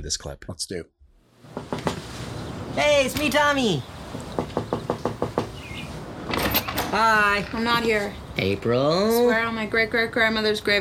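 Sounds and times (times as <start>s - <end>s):
speech: 0.0s - 1.8s, 2.8s - 4.7s, 6.9s - 10.7s
knocking on a door: 1.5s - 2.0s, 4.3s - 5.6s.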